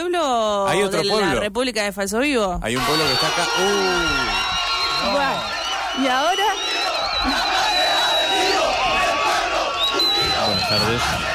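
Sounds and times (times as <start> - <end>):
speech: 0.0 - 7.5, 10.7 - 11.3
whistles: 2.8 - 8.8, 9.5 - 11.2
large crowd of protesters roaring and shouting: 2.8 - 11.3
laughter: 7.2 - 9.2.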